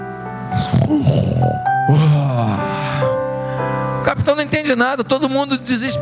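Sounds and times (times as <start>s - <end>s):
steady sustained musical tone: 0.0s - 4.2s
man imitating snoring: 0.5s - 3.0s
speech: 0.9s - 2.7s, 4.2s - 6.0s.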